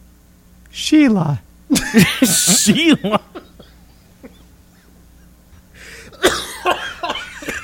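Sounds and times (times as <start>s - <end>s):
speech: 0.7s - 3.5s
person coughing: 2.0s - 5.0s, 6.0s - 7.6s.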